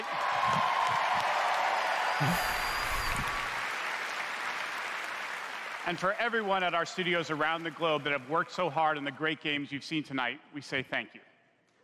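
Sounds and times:
audience applause: 0.0s - 8.3s
speech: 2.2s - 2.6s, 5.9s - 11.3s.

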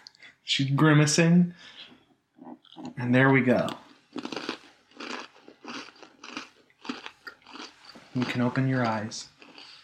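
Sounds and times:
speech: 0.5s - 1.8s, 3.0s - 4.3s, 8.2s - 9.4s
person chewing a crunchy sandwich cookie: 2.4s - 9.8s.

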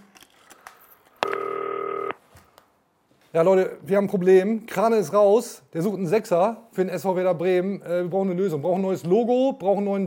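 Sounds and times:
DTMF telephone keypad tone: 1.2s - 2.2s
speech: 3.3s - 10.0s.

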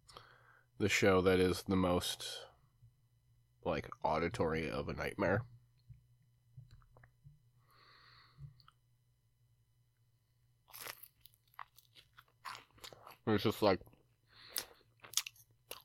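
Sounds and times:
low steady hum: 0.0s - 15.8s
speech: 0.8s - 2.5s, 3.6s - 5.5s, 13.3s - 13.9s
crunchy chewing of a snack: 10.6s - 13.3s, 13.9s - 15.8s.

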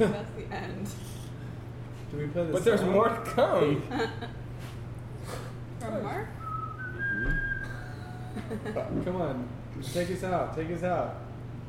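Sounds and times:
speech: 0.0s - 1.0s, 2.1s - 4.4s, 8.4s - 11.3s
low hum: 0.0s - 11.6s
person whistling a steady high note: 6.4s - 7.9s.

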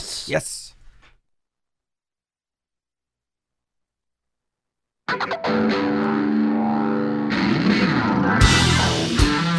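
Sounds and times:
speech: 0.3s - 0.8s
distorted electric guitar blues song intro: 5.1s - 9.5s.

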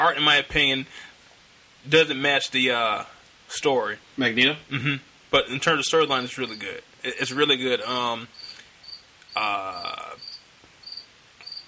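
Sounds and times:
speech: 0.0s - 1.1s, 1.8s - 8.4s, 9.4s - 10.2s
cricket chirping: 5.6s - 11.6s.

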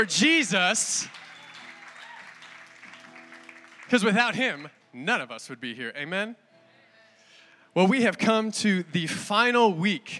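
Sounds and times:
speech: 0.0s - 1.2s, 3.9s - 6.4s, 7.7s - 10.1s
audience applause: 0.7s - 4.3s.

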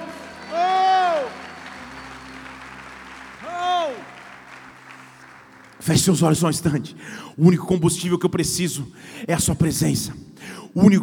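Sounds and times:
loud drawn-out shouts to the Lord: 0.0s - 2.1s, 3.4s - 4.4s
audience at a worship service clapping: 0.0s - 7.0s
speech: 5.8s - 11.0s.

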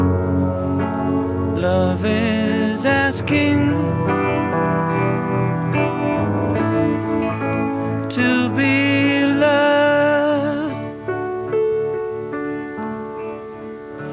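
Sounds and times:
dobro resonator guitar playing twangy accompaniment with sliding notes: 0.0s - 14.1s
man singing: 1.5s - 4.8s, 8.0s - 11.0s
speech: 1.7s - 2.5s, 3.1s - 4.2s.

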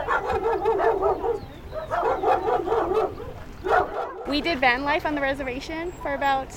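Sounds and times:
several excited dogs barking, yipping and whining in a van: 0.0s - 4.6s
speech: 4.3s - 6.5s.

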